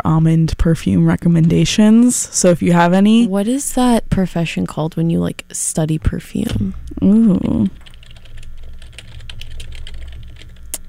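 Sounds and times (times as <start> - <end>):
speech: 0.1 - 7.8
rapid computer keyboard typing clacks: 7.3 - 10.8.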